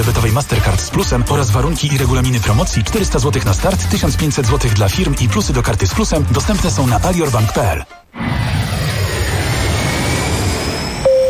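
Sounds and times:
speech: 0:00.0 - 0:08.4
jet airliner engines roaring during takeoff: 0:08.2 - 0:11.2
sharp electronic tone: 0:10.8 - 0:11.2.

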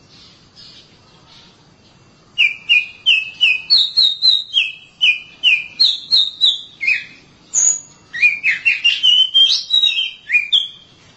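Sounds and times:
Oriental magpie-robin giving clear whistled notes: 0:02.4 - 0:11.1.

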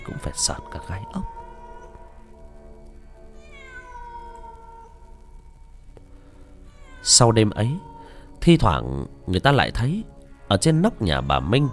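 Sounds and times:
black cat wailing on a rooftop at night: 0:00.0 - 0:02.4, 0:03.3 - 0:05.7, 0:06.6 - 0:08.3, 0:11.0 - 0:11.7
low steady hum: 0:00.0 - 0:11.7
speech: 0:00.2 - 0:01.4, 0:07.1 - 0:11.7.

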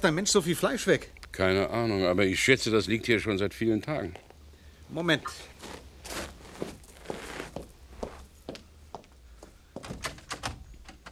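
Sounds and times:
speech: 0:00.0 - 0:04.2, 0:04.9 - 0:06.7
locked back door rattling and thumping: 0:09.8 - 0:11.1.

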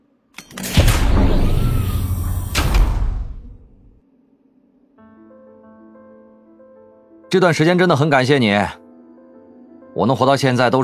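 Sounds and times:
escape pod door sliding closed with mechanical rumble: 0:00.4 - 0:04.0
low thud: 0:00.5 - 0:04.0
speech: 0:07.3 - 0:08.8, 0:10.0 - 0:10.8.

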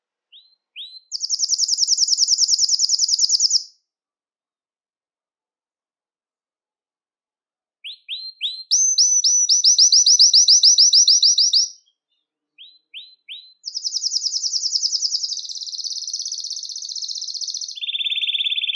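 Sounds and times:
Belgian canary singing rapid trills, chirps and rattling trills: 0:00.3 - 0:03.7, 0:07.8 - 0:18.7.

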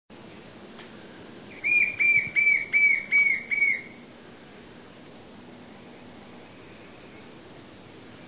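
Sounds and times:
White-shouldered fire-eye Pyriglena leucoptera whistles: 0:01.5 - 0:04.0.

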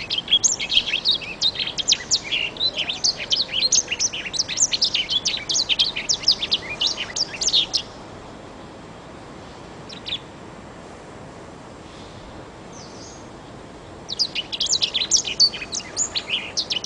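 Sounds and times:
Oriental magpie-robin song: 0:00.0 - 0:08.0, 0:09.8 - 0:10.3, 0:12.7 - 0:13.3, 0:13.9 - 0:16.8
quiet hiss: 0:00.0 - 0:16.8.

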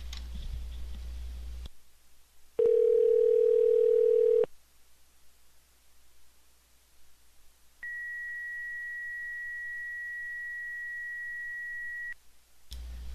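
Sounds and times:
phone call beeping tones, call not connecting: 0:02.6 - 0:04.5, 0:07.8 - 0:12.2.

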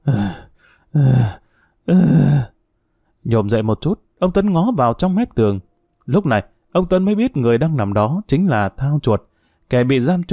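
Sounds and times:
speech: 0:00.0 - 0:02.4, 0:03.3 - 0:10.3
man moaning in pain: 0:00.0 - 0:02.6.

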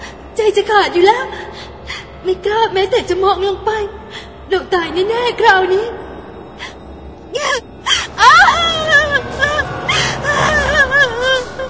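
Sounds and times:
speech: 0:00.5 - 0:01.4, 0:02.2 - 0:06.0
woman wailing and crying out in frightened sobbing anguish: 0:07.4 - 0:11.6.

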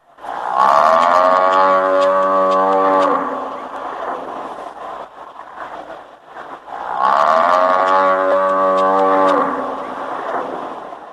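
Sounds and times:
cow sick with lumpy skin disease mooing on a farm in Hassan: 0:00.6 - 0:03.4, 0:07.0 - 0:09.7.

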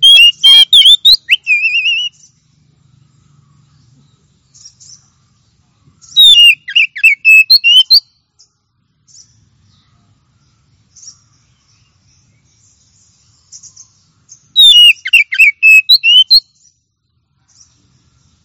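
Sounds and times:
Oriental magpie-robin lively whistled song phrase: 0:00.0 - 0:05.3, 0:06.0 - 0:18.4
faint soft bird notes: 0:00.0 - 0:18.4.

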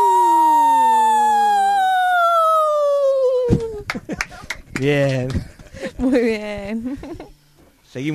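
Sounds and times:
two women howling together as a duo: 0:00.0 - 0:03.8
speech: 0:04.8 - 0:07.3, 0:07.9 - 0:08.1.

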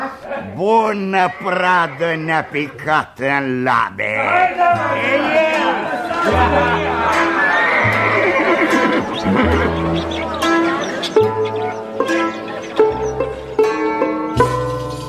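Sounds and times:
laughter: 0:00.0 - 0:14.7
speech: 0:00.5 - 0:05.5, 0:06.2 - 0:07.6
white horse neighing: 0:04.9 - 0:14.3.

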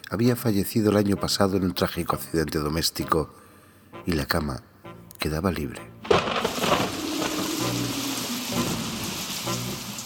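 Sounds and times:
speech: 0:00.1 - 0:03.4, 0:04.0 - 0:05.9
low rolling rumble of thunder: 0:06.4 - 0:10.0
steady heavy rain hissing: 0:06.4 - 0:10.0.

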